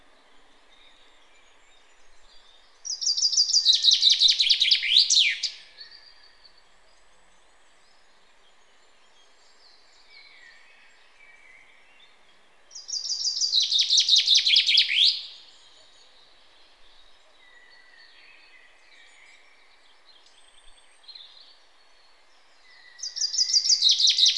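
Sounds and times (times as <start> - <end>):
common chaffinch Fringilla coelebs song: 0.0 - 24.3
soft faint chirps: 0.0 - 24.3.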